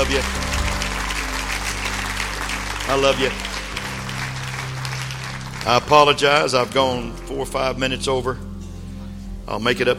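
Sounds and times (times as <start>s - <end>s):
large standing audience applauding: 0.0s - 7.4s
speech: 0.1s - 0.5s, 2.9s - 3.5s, 5.6s - 8.4s, 9.5s - 9.9s.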